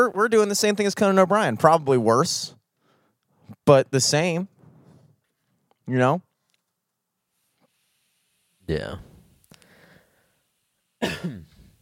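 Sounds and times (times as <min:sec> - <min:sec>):
speech: 0:00.0 - 0:02.6, 0:03.7 - 0:04.5, 0:05.9 - 0:06.3, 0:08.7 - 0:09.1
person coughing from vape smoke: 0:11.0 - 0:11.7.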